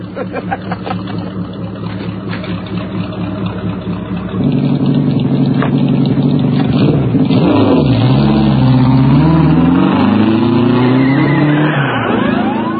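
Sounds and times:
laughter: 0:00.0 - 0:01.4
chopped tricycle engine revving on a dirt road: 0:00.0 - 0:12.7
wheels squealing on dirt road: 0:04.6 - 0:12.7.

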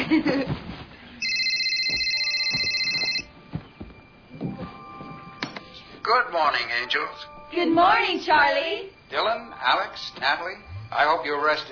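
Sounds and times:
telephone ringing with electronic trill: 0:01.2 - 0:03.3
speech: 0:06.1 - 0:11.7.

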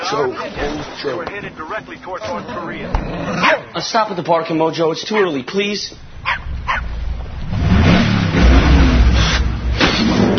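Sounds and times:
speech: 0:00.1 - 0:06.5
dog barking: 0:05.1 - 0:05.4, 0:06.2 - 0:06.9
Camaro car engine revving in a yard: 0:06.0 - 0:10.3.

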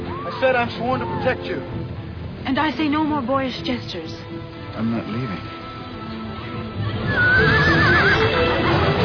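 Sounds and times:
speech: 0:00.5 - 0:01.8, 0:02.5 - 0:05.5
horse whinnying as it is taken away: 0:06.4 - 0:09.0.

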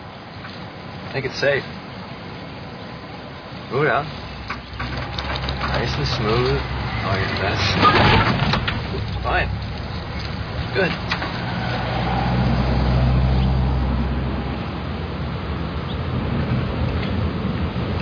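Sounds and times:
speech: 0:01.1 - 0:01.8, 0:03.7 - 0:04.2, 0:05.8 - 0:09.6, 0:10.8 - 0:11.2
car passing by on a road: 0:05.5 - 0:17.9.

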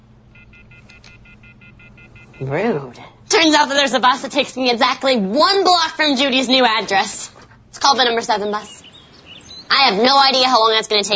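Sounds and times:
low hum: 0:00.0 - 0:11.1
telephone number dialed with touch-tone beeps: 0:00.4 - 0:02.6
speech: 0:02.4 - 0:07.2, 0:07.8 - 0:08.8, 0:09.7 - 0:11.1.

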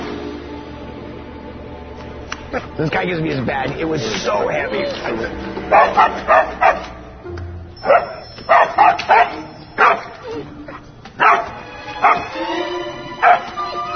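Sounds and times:
speech: 0:02.5 - 0:06.6
dog barking: 0:05.7 - 0:07.0, 0:07.8 - 0:12.4, 0:13.2 - 0:13.8.

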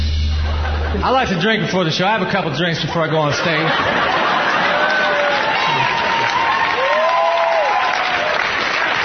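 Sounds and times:
laughter: 0:00.2 - 0:06.3
speech: 0:01.1 - 0:04.2
large audience applause: 0:03.5 - 0:09.0
faint whoops: 0:04.7 - 0:08.4.

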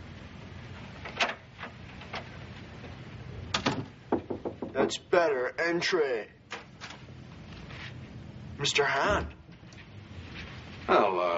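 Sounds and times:
steady low hum: 0:00.0 - 0:11.3
knocking on a door: 0:04.1 - 0:05.0
speech: 0:04.8 - 0:06.4, 0:08.6 - 0:09.4, 0:10.9 - 0:11.3.

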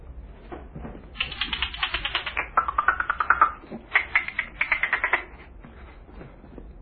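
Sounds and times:
whale clicking in uneven trains: 0:01.2 - 0:05.3.

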